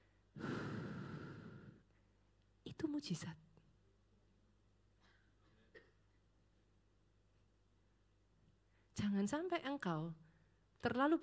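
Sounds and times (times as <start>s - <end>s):
long deep exhale: 0.3s - 1.9s
speech: 2.8s - 3.5s, 9.1s - 10.2s, 10.8s - 11.2s.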